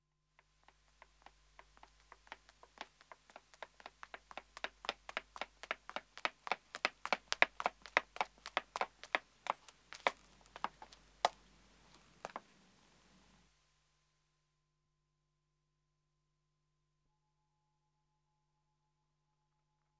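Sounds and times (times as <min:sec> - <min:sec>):
woman running on pavement footsteps: 0:00.6 - 0:12.6.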